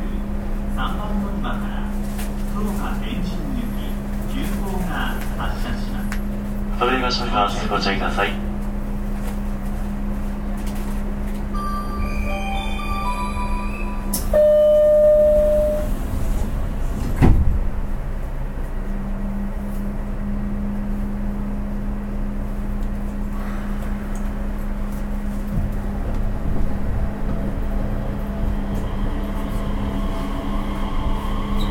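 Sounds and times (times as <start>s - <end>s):
Nishitetsu 3000 series electric commuter train interior running noise: 0.0s - 31.7s
chime-like tones: 11.6s - 15.9s.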